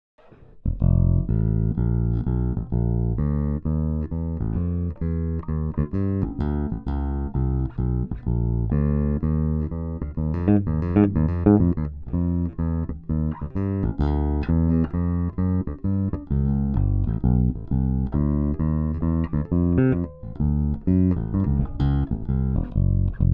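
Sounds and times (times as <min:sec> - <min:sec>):
jazz walking bass: 0:00.5 - 0:23.3.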